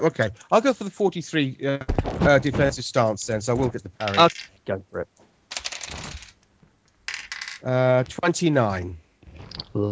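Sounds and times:
speech: 0.0 - 5.2, 7.6 - 9.0, 9.7 - 9.9
dice rolling on a hard tabletop: 4.0 - 4.6, 5.5 - 6.4, 7.0 - 7.7.

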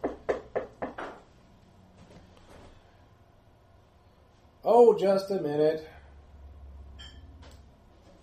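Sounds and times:
knocking on a door: 0.0 - 1.2
speech: 4.7 - 5.9.

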